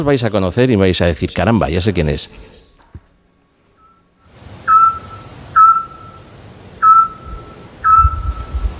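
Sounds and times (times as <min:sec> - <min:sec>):
speech: 0:00.0 - 0:02.6
Eurasian scops owl sonar-like whistled call in Peñaranda de Duero: 0:04.6 - 0:08.6.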